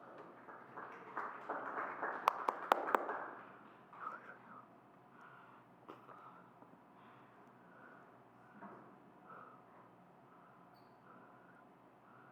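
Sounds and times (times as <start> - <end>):
audience applauding: 0.0 - 3.6.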